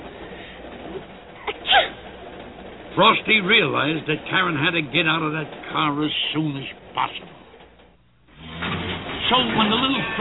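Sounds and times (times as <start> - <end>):
girl sneezing: 1.4 - 2.0
speech: 3.0 - 7.4, 9.3 - 10.1.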